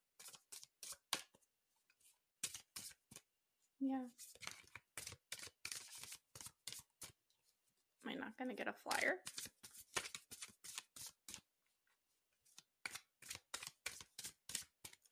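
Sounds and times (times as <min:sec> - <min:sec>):
deck of tarot cards being shuffled for a reading: 0:00.2 - 0:01.4, 0:04.2 - 0:07.2, 0:08.9 - 0:11.5, 0:12.5 - 0:15.1
speech: 0:03.8 - 0:04.5, 0:08.1 - 0:09.3.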